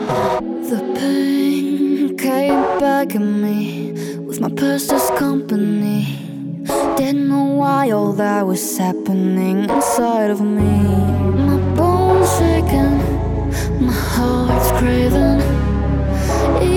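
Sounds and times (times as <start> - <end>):
person singing in German: 0.2 - 16.7.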